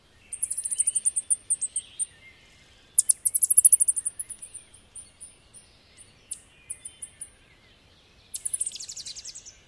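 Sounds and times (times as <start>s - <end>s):
ovenbird interaction calls: 0.2s - 7.4s, 8.3s - 9.6s.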